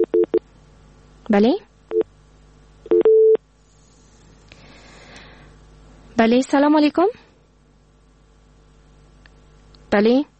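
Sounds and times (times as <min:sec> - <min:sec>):
busy tone beeps after a dropped phone call: 0:00.0 - 0:00.4, 0:02.9 - 0:03.4
speech: 0:01.3 - 0:01.7, 0:06.2 - 0:07.2, 0:09.9 - 0:10.3.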